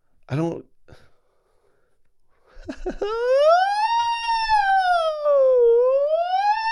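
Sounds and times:
person imitating an ambulance siren: 0:02.9 - 0:06.7.

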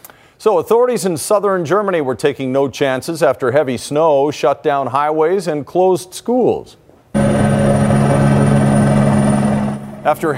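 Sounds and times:
speech: 0:00.4 - 0:06.8, 0:10.0 - 0:10.3
helicopter rotor whirring while clearing snow from treetops: 0:07.2 - 0:10.3.

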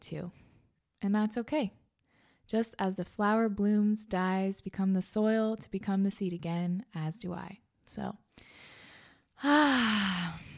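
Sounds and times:
speech: 0:00.1 - 0:01.8, 0:02.5 - 0:08.7, 0:09.4 - 0:10.5
deep breath released as a long voiced falling sigh: 0:08.5 - 0:10.5.

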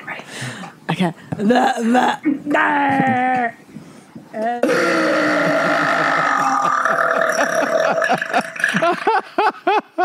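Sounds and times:
speech: 0:01.0 - 0:03.6, 0:04.3 - 0:06.1, 0:06.9 - 0:10.0
girl burping: 0:04.4 - 0:08.9
laughter: 0:05.2 - 0:10.0.

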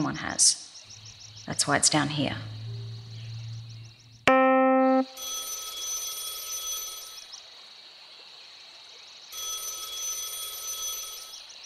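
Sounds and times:
speech: 0:00.0 - 0:00.6, 0:01.5 - 0:02.6
telephone ringing with hollow echo: 0:04.3 - 0:07.3, 0:09.3 - 0:11.5.

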